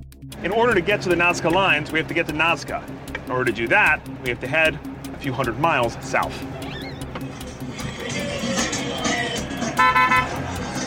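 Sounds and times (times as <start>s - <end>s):
speech: 0.2s - 6.6s
rumble and hiss of passing vehicles: 0.3s - 10.8s
car horns honking in busy street traffic: 7.9s - 10.7s.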